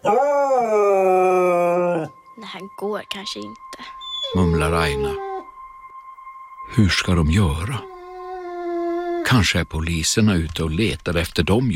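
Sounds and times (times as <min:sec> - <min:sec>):
speech: 0:00.0 - 0:00.4, 0:02.8 - 0:05.3, 0:06.7 - 0:07.9, 0:09.2 - 0:11.7
dog howling and whining: 0:00.0 - 0:02.2, 0:04.0 - 0:05.6, 0:07.8 - 0:09.4.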